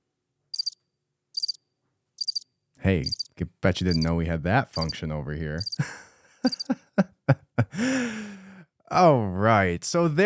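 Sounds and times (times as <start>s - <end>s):
cricket chirping: 0.5s - 0.8s, 1.4s - 1.6s, 2.2s - 3.3s, 5.6s - 5.8s, 6.5s - 6.7s
speech: 2.8s - 7.1s, 8.9s - 10.2s
laughter: 5.8s - 8.4s.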